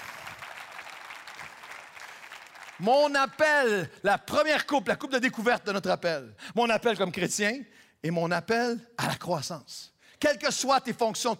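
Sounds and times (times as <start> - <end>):
church congregation applauding during a sermon: 0.0 - 3.8
speech: 2.8 - 11.3.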